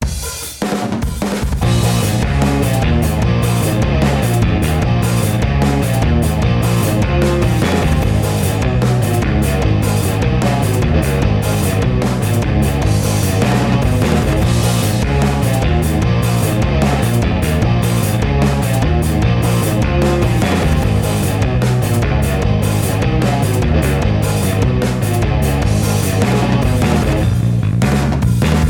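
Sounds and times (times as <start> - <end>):
drums: 0.0 - 28.6
bass: 1.4 - 28.6
guitar: 1.5 - 28.6.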